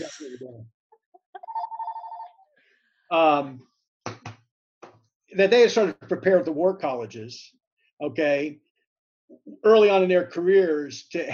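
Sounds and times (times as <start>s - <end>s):
speech: 0.0s - 0.8s, 3.1s - 3.7s, 5.3s - 8.6s, 9.4s - 11.3s
telephone ringing with an electronic warble: 1.4s - 2.4s.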